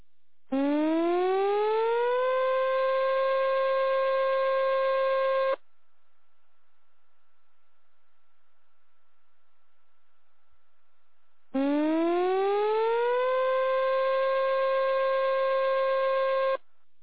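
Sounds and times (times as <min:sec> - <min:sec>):
town civil defense siren for a tsunami warning: 0:00.5 - 0:05.6, 0:11.6 - 0:16.6.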